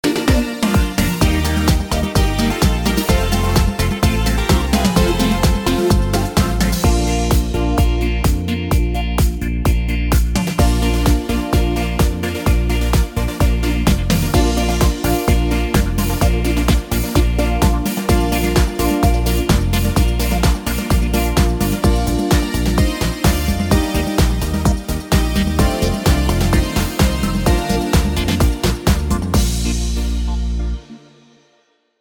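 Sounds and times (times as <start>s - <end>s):
schlager disco beat: 0.0s - 31.3s.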